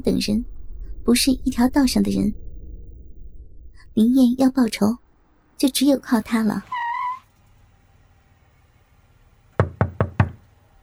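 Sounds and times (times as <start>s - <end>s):
speech: 0.0s - 2.4s, 4.0s - 5.0s, 5.6s - 6.7s
knocking on an office door at city hall: 9.6s - 10.4s.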